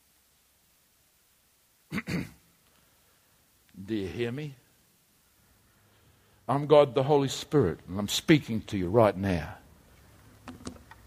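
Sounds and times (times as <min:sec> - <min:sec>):
man clearing his throat: 0:01.9 - 0:02.4
speech: 0:03.9 - 0:04.6, 0:06.5 - 0:09.6.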